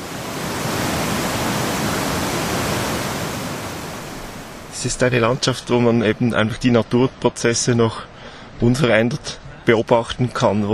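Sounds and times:
fast glacial river rushing over rocks: 0.0 - 6.3
speech: 4.8 - 10.7.

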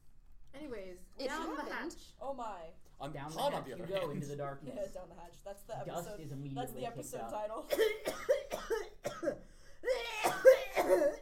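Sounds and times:
speech: 0.6 - 8.4
person coughing: 7.7 - 11.2.

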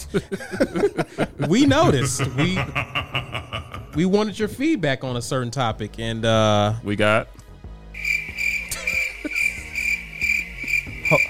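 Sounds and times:
laughter: 0.0 - 4.2, 8.7 - 9.8, 11.0 - 11.2
speech: 0.1 - 3.1, 4.0 - 7.4
crickets chirping in a high-pitched trill: 8.0 - 11.2.

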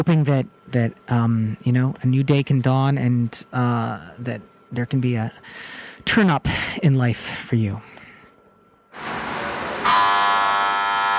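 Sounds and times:
speech: 0.0 - 7.9
shot clock buzzer: 9.0 - 11.1.

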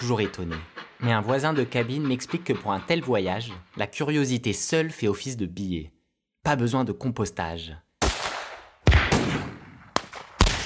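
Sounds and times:
speech: 0.0 - 7.8
gunshots: 8.0 - 10.6.

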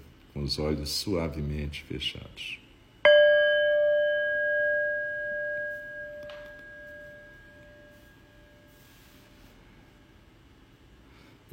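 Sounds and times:
speech: 0.4 - 2.6
meditation bell struck during meditation practice: 3.0 - 10.2
soft rustle: 5.5 - 9.9.

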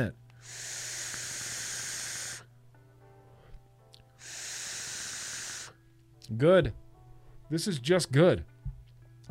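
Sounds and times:
speech: 0.0 - 0.7, 6.3 - 6.8, 7.5 - 8.5
vape coil crackling during an inhale: 0.5 - 2.5, 4.2 - 5.8.

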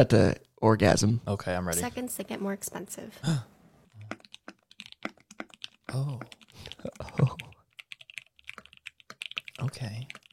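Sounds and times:
speech: 0.0 - 4.1, 5.9 - 7.4, 9.6 - 10.2
typing on a computer keyboard: 4.0 - 10.3.

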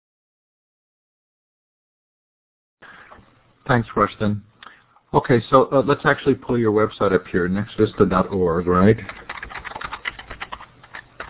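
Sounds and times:
speech: 3.7 - 4.5, 5.1 - 9.3
typing on a computer keyboard: 9.0 - 11.2.

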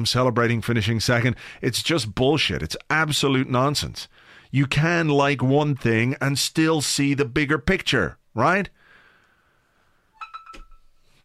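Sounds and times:
speech: 0.0 - 8.8
mobile phone electronic beeps and tones: 10.2 - 10.9.

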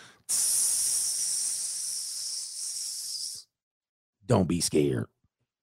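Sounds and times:
person imitating a cobra's hiss: 0.0 - 3.5
speech: 4.3 - 5.2.

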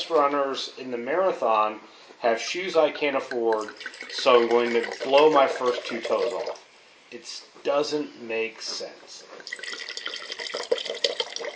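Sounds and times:
speech: 0.0 - 9.9
wine being poured into a glass: 2.7 - 6.7, 9.4 - 11.5.

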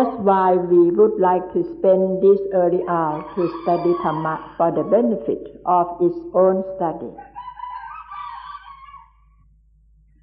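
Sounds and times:
speech: 0.0 - 7.3
rooster crowing in the early morning: 3.0 - 5.0, 7.2 - 9.4.

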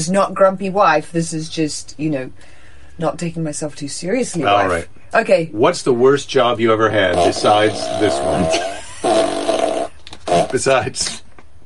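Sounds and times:
speech: 0.0 - 9.2, 10.5 - 11.2
novelty fart machine noises: 7.0 - 11.2.

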